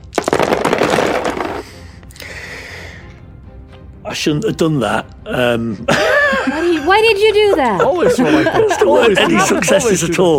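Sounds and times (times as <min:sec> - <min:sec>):
dice tumbling and rattling together: 0:00.0 - 0:01.8
speech: 0:04.1 - 0:10.3
laughter: 0:05.8 - 0:10.3.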